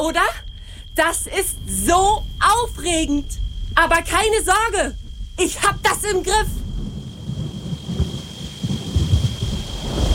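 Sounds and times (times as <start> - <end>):
speech: 0.0 - 6.6
steady hiss of rain: 0.6 - 10.1
deep rolling thunder: 4.9 - 10.1.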